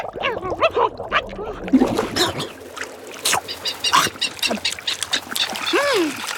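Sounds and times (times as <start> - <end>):
water splashing from albatrosses dipping heads: 0.0 - 6.3
albatrosses squabbling with harsh honking and squawking calls: 3.3 - 5.8.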